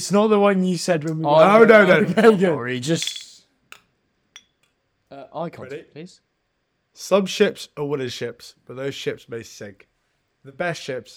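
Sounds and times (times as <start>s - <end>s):
speech: 0.0s - 3.3s, 5.1s - 6.3s, 7.0s - 11.1s
beer glasses clinking together in a toast: 2.8s - 3.4s, 4.4s - 4.6s.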